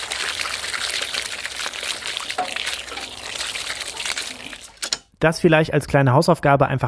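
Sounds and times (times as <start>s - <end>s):
water pouring from a watering can into a bathtub: 0.0s - 5.0s
speech: 5.2s - 6.8s.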